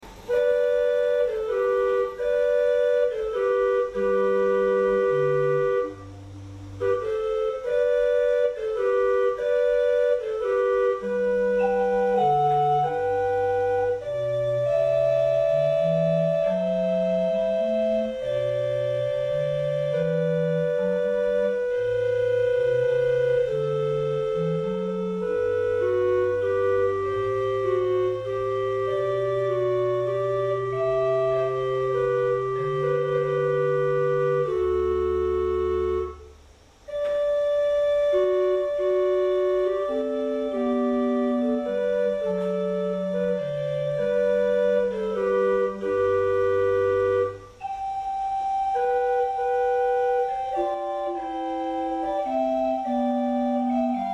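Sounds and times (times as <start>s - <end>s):
chimney flute: 0.0s - 54.1s.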